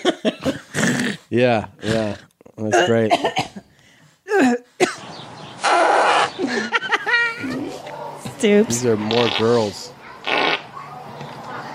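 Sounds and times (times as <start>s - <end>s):
laughter: 0.0s - 1.2s, 6.1s - 7.8s
speech: 1.3s - 3.6s, 8.4s - 9.9s
loud raspy fart: 5.6s - 6.4s, 9.1s - 10.7s
faint murmuring voices: 5.6s - 11.7s.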